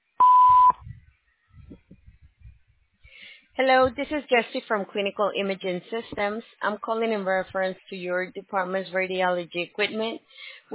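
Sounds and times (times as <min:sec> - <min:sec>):
voicemail recording beep tone: 0:00.2 - 0:00.8
speech: 0:03.6 - 0:10.7.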